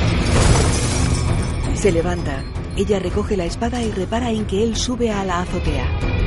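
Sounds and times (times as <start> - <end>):
window glass shattering as a man crashes through it: 0.2 - 1.7
speech: 1.8 - 6.1.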